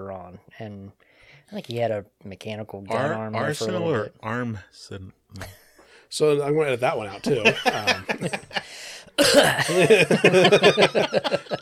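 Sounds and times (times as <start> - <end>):
speech: 0.0 - 11.6
laughter: 7.0 - 11.6
sharp cough: 9.2 - 9.8.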